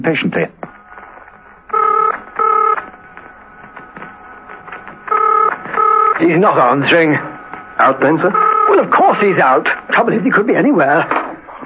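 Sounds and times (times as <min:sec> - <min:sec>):
speech: 0:00.0 - 0:00.6, 0:06.2 - 0:11.2
telephone ringing in double bursts: 0:01.6 - 0:03.1, 0:05.0 - 0:09.6.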